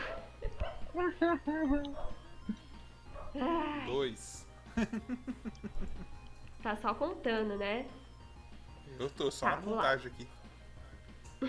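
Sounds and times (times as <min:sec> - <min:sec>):
dog yelping barks: 0:00.0 - 0:01.0, 0:01.9 - 0:02.2, 0:03.1 - 0:03.4
speech: 0:00.4 - 0:02.6, 0:03.3 - 0:08.1, 0:08.9 - 0:10.4
laughter: 0:04.7 - 0:06.2.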